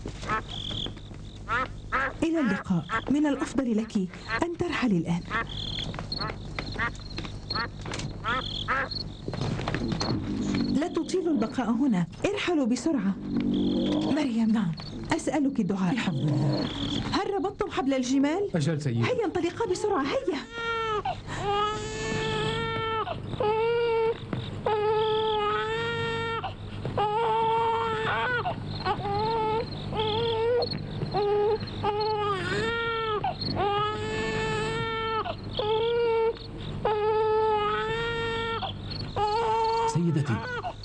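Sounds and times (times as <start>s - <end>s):
speech: 2.2s - 20.7s
hungry baby crying: 20.3s - 40.8s.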